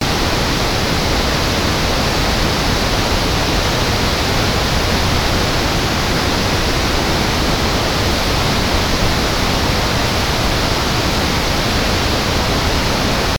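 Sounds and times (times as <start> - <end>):
large waterfall: 0.0 - 13.3.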